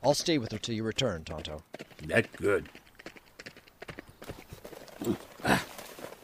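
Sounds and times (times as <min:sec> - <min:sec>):
speech: 0:00.0 - 0:02.8, 0:05.0 - 0:05.6
horse hooves clip-clopping as riders set off on horseback: 0:00.0 - 0:06.2.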